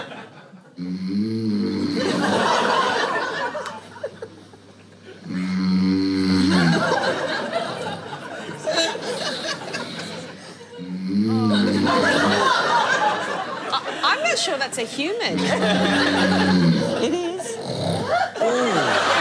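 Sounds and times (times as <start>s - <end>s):
laughter: 0.0s - 0.8s, 1.8s - 5.2s, 6.4s - 19.2s
speech: 0.8s - 1.5s
sleeping man snoring loudly: 0.8s - 2.4s, 5.2s - 7.0s, 9.3s - 12.6s, 15.3s - 18.9s.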